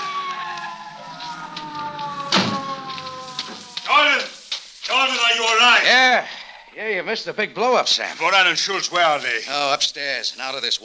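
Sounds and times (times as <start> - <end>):
police car squealing to a stop: 0.0 - 4.5
sharp burst of noise: 0.0 - 6.0
speech: 5.6 - 10.8.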